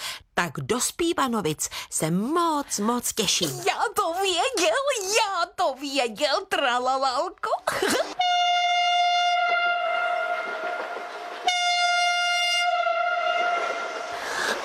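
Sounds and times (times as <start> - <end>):
speech: 0.4 - 8.3
train horn blasts: 8.2 - 14.1.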